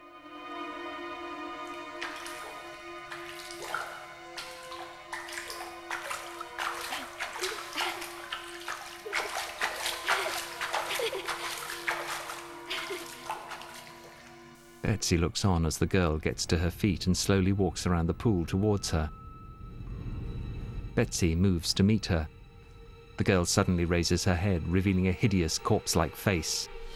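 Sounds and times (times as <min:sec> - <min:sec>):
water splashed by hand in a pool: 0:01.6 - 0:14.8
speech: 0:15.0 - 0:19.2, 0:21.0 - 0:22.4, 0:23.2 - 0:26.7.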